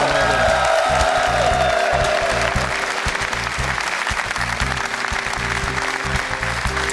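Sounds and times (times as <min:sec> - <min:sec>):
scattered cheers from studio audience: 0:00.0 - 0:03.1
studio audience clapping: 0:00.0 - 0:06.9.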